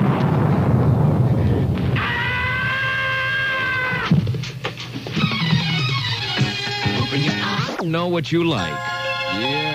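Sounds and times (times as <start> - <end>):
rumbling thunder crash sound effect: 0.0 - 3.0
sharp crackling bursts: 0.0 - 8.0
speech: 7.9 - 9.6.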